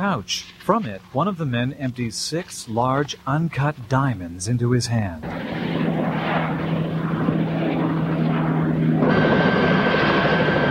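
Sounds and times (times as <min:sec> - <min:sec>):
speech: 0:00.0 - 0:06.0
helicopter engine and rotors roaring overhead: 0:05.2 - 0:10.6.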